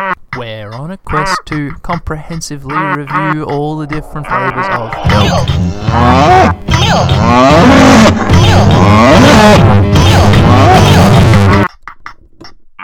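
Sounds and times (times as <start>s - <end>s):
speech: 0.4s - 11.6s
person imitating a cow mooing: 2.7s - 11.3s.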